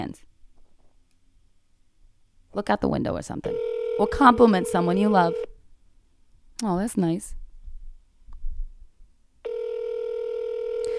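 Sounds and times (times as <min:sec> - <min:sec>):
speech: 0:02.5 - 0:05.5, 0:06.6 - 0:07.4
telephone ringback tone before voicemail: 0:03.5 - 0:05.5, 0:09.5 - 0:10.9.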